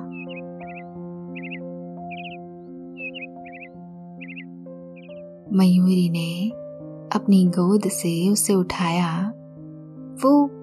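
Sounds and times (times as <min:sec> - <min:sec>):
peacock calling as it flies away: 0:00.0 - 0:02.4, 0:03.0 - 0:04.4
speech: 0:05.5 - 0:09.4, 0:10.2 - 0:10.5.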